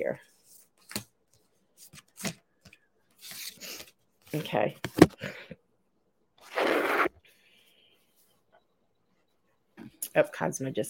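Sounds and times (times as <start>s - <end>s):
speech: 0.0s - 0.4s, 4.3s - 5.4s, 10.2s - 10.8s
playing cards being shuffled: 6.4s - 7.1s.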